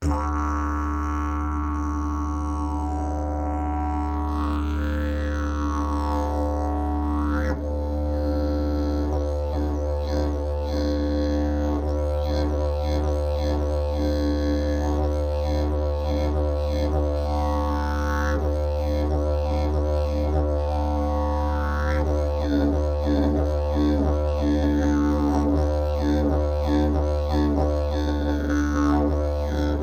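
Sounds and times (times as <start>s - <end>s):
ash wood didgeridoo: 0.0s - 29.8s.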